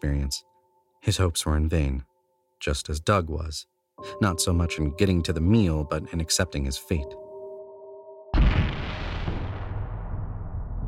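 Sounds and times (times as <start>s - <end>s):
speech: 0.0s - 7.2s
loud explosive bang: 8.4s - 10.8s.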